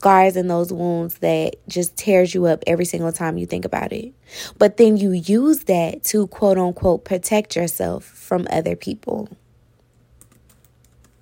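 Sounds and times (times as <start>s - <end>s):
speech: 0.0s - 9.4s
low hum: 0.0s - 11.2s
typing on a computer keyboard: 10.2s - 11.2s.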